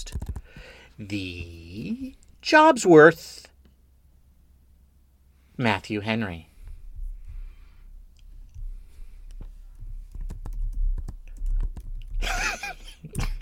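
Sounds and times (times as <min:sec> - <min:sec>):
typing on a computer keyboard: 0:00.0 - 0:00.5, 0:10.1 - 0:12.2
speech: 0:01.0 - 0:03.5, 0:05.6 - 0:06.5.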